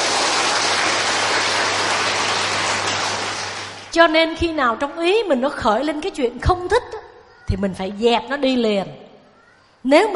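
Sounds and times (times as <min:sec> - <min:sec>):
crowd applauding: 0:00.0 - 0:03.9
speech: 0:03.9 - 0:09.0, 0:09.8 - 0:10.1.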